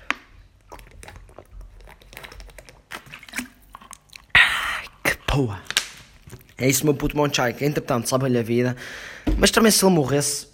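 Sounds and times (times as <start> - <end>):
person drinking water during a break: 0.0 - 6.7
speech: 5.4 - 5.7, 6.6 - 10.5.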